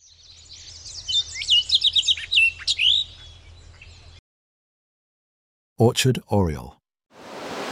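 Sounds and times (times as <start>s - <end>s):
house sparrow calling: 0.0s - 4.2s
speech: 5.8s - 6.8s.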